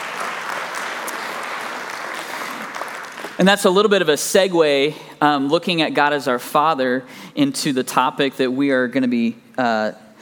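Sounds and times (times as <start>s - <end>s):
large indoor crowd applauding: 0.0s - 3.8s
speech: 3.4s - 10.0s.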